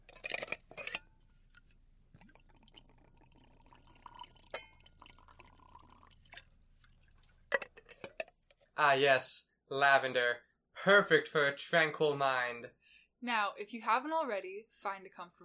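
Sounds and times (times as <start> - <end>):
tea trickling into a cup: 2.1 - 7.6
speech: 8.8 - 15.4.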